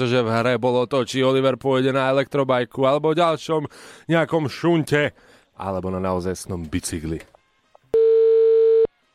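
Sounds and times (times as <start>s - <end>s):
speech: 0.0s - 7.3s
electronic telephone busy tone after hang-up: 8.0s - 8.9s.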